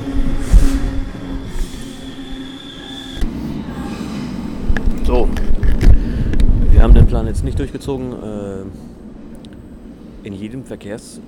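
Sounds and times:
train wheels squealing: 0.0s - 4.6s
train arriving: 0.0s - 11.2s
speech: 7.4s - 9.0s, 10.2s - 11.2s.

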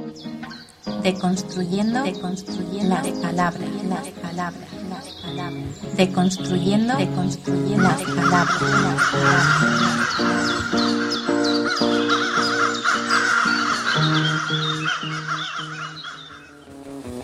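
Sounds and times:
speech: 1.0s - 11.9s
human voice imitating a crow cawing: 2.1s - 16.6s.

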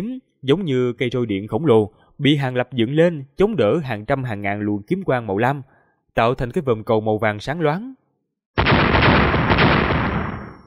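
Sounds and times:
speech: 0.0s - 8.0s
massive explosion roaring across the sky in a magical sword battle: 8.6s - 10.6s.

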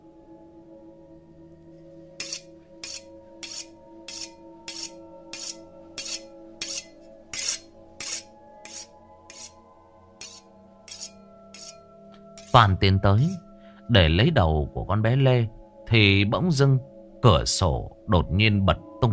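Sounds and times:
butcher knife being sharpened against the edge of a plate: 2.2s - 9.6s, 10.2s - 11.8s, 12.4s - 12.6s
speech: 12.5s - 19.1s.

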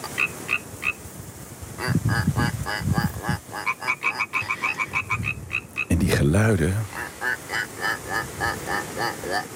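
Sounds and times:
frog chorus in a pond near Heraklion, Crete: 0.0s - 1.0s, 1.8s - 5.9s, 6.9s - 9.5s
deeper throaty frog croaks: 1.8s - 6.2s, 6.8s - 9.5s
man talking with croaking frogs: 5.9s - 7.0s.

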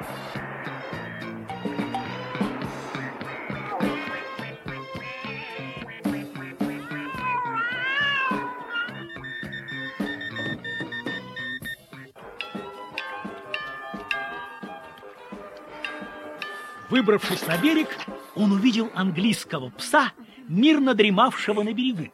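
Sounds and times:
busy music: 0.0s - 20.4s
cats meowing and yowling on a shore: 6.7s - 10.5s
speech: 16.9s - 22.1s.

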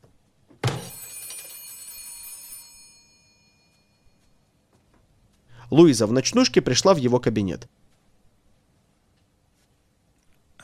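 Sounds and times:
office call bell ringing: 0.7s - 4.4s
low hiss: 3.0s - 10.6s
speech: 5.7s - 7.8s.

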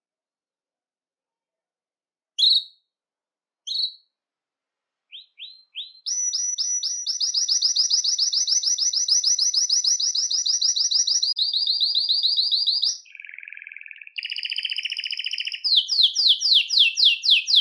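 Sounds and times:
Belgian canary song: 2.4s - 2.9s, 3.6s - 4.2s, 5.1s - 17.5s.

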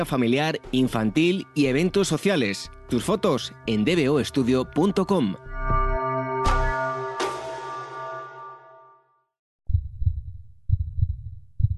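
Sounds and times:
speech: 0.0s - 5.5s
ringing sustained musical hit: 4.4s - 9.0s
heartbeat sound effect with low lub-dub thumps: 9.7s - 11.7s.

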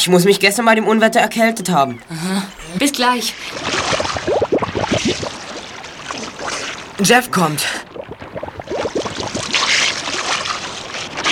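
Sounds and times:
speech: 0.0s - 4.4s, 7.0s - 7.9s
hissing wash of moving water around a rowboat: 2.1s - 11.3s
rowboat oar strokes splashing and sloshing: 2.5s - 11.3s.

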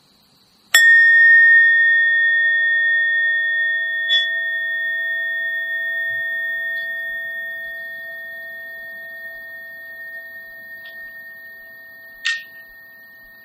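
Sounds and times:
meditation bell struck once and ringing: 0.7s - 13.4s.

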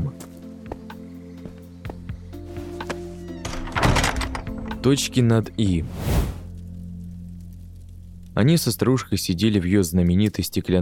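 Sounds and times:
door in a game world clanging open: 3.4s - 4.9s
speech: 4.8s - 6.3s, 8.4s - 10.8s.

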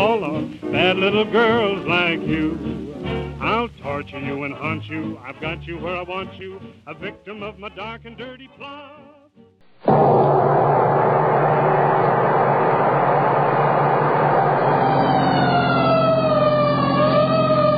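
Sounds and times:
speech: 0.1s - 2.8s, 3.4s - 9.2s, 9.8s - 10.7s
fire engine siren wailing: 10.2s - 17.7s.

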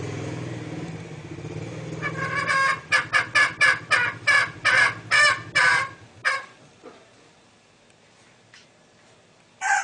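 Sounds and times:
green junglefowl hen giving harsh clucking notes: 2.0s - 6.6s.

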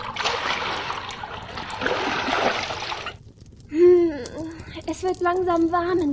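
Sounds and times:
heated water poured into a large wooden bathtub in a chamber beside a kitchen: 0.0s - 3.2s
speech: 5.0s - 6.1s.

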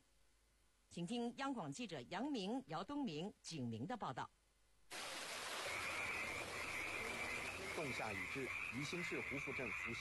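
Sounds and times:
speech: 1.0s - 4.4s, 7.8s - 10.0s
steady hiss: 4.9s - 9.8s
frogs croaking in a rural village in Yixing, China, in early summer: 5.4s - 10.0s.

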